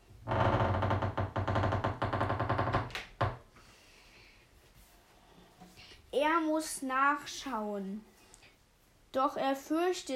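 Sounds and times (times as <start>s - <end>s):
knights' hall door creaking open slowly: 0.2s - 3.4s
speech: 6.3s - 8.1s, 9.2s - 10.1s.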